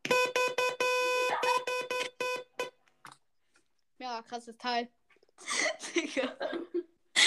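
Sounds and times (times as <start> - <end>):
harsh buzzy car-horn-like censor sound effect: 0.0 - 2.8
speech: 4.3 - 5.0, 6.0 - 7.0.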